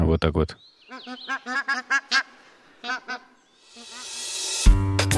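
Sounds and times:
speech: 0.1 - 5.0
geese honking in flight: 0.9 - 4.2.

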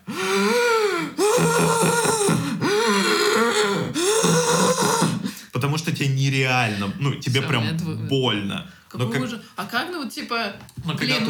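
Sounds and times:
person imitating heavy strained groaning breathing: 0.0 - 5.4
speech: 6.0 - 11.2.

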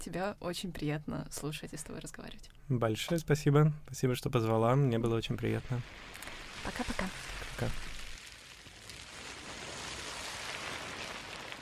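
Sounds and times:
speech: 0.0 - 7.9
plastic waste collected from a beach rustling: 5.4 - 11.5.

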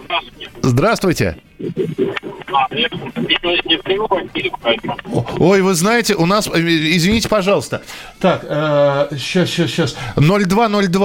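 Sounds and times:
caller's voice through a warbling distorted phone line: 0.0 - 5.6
speech: 0.1 - 11.0.

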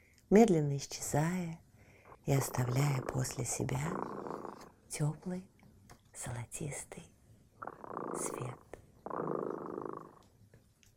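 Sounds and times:
speech: 0.3 - 1.6, 2.3 - 5.5, 6.2 - 10.1
cat purring: 2.2 - 5.0, 7.6 - 10.3.

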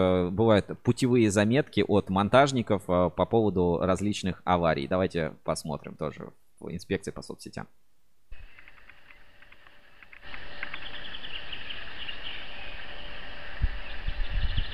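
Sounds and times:
speech: 0.0 - 7.9
hiss: 0.0 - 14.7
chorus of small birds chirping and twittering: 8.4 - 14.7.

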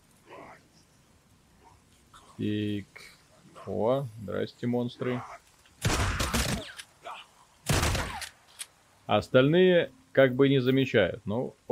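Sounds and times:
speech: 2.4 - 5.4, 9.1 - 11.7
rapid video game gunfire: 5.8 - 6.6, 7.7 - 8.3.

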